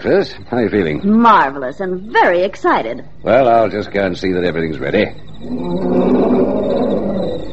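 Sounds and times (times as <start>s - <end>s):
speech: 0.0s - 6.2s
lion roaring: 5.4s - 7.5s.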